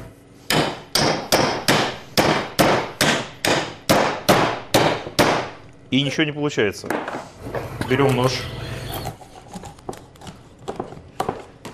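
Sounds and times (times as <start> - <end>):
hammer banging on fish: 0.5 - 5.5
speech: 5.9 - 8.6.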